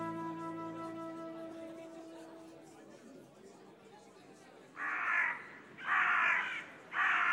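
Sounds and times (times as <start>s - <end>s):
crows cawing: 4.8s - 7.3s.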